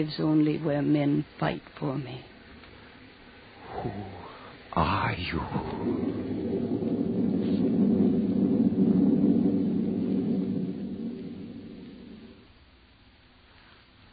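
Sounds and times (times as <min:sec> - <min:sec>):
speech: 0:00.0 - 0:02.3, 0:03.7 - 0:06.8
long deep roll of thunder: 0:03.6 - 0:13.0.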